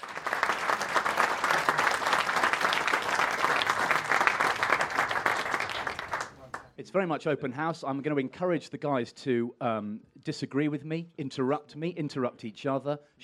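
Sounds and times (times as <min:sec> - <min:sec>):
sizeable audience applauding a panel: 0:00.0 - 0:06.7
speech: 0:06.8 - 0:13.2.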